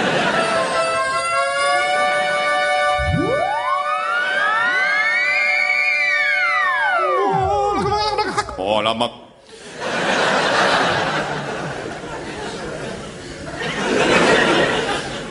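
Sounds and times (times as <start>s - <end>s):
steady layered tonal drone: 0.0s - 8.5s
ambulance siren wailing: 0.1s - 8.2s
laughter: 7.2s - 8.8s, 9.6s - 15.2s
speech: 8.8s - 9.2s.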